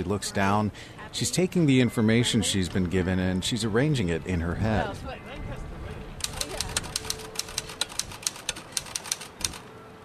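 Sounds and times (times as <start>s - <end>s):
speech: 0.0s - 5.6s
low murmur: 0.0s - 10.0s
typewriter clacking: 6.2s - 9.6s.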